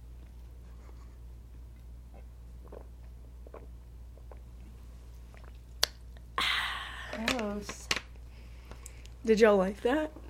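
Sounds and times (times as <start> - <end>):
person sipping a drink: 2.1 - 7.2
hissy slurping suck: 2.2 - 4.5
speech: 7.6 - 7.8, 9.2 - 10.2.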